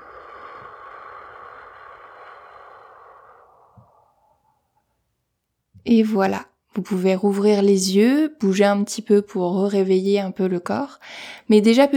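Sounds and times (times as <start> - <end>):
slow soft breath out through the mouth during a relaxation breathing exercise: 0.0 - 4.9
speech: 5.8 - 11.9.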